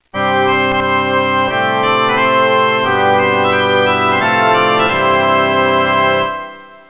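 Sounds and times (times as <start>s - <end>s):
organ playing: 0.0s - 6.8s.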